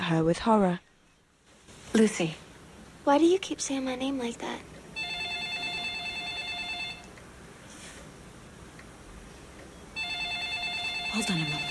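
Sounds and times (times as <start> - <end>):
speech: 0.1 - 0.9, 1.9 - 2.4, 3.0 - 4.7, 11.2 - 11.7
telephone ringing with a bright trilling electronic tone: 5.0 - 7.1, 10.0 - 11.7.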